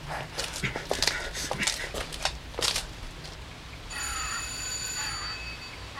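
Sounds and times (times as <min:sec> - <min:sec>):
shuffling and clicking: 0:00.0 - 0:03.4
electric doorbell ringing with a buzzing tone: 0:03.9 - 0:05.8.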